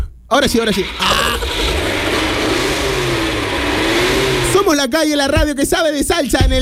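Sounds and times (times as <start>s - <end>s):
speech: 0.3s - 1.4s, 4.7s - 6.6s
car engine revving: 0.7s - 4.8s.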